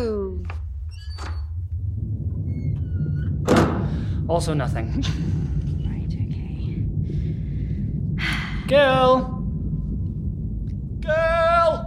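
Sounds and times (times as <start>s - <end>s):
steady low rumble: 0.0s - 11.8s
door opening: 0.4s - 4.0s
thin drawn-out door squeak: 0.9s - 1.7s, 2.4s - 3.8s
speech: 4.3s - 5.5s, 8.7s - 9.3s.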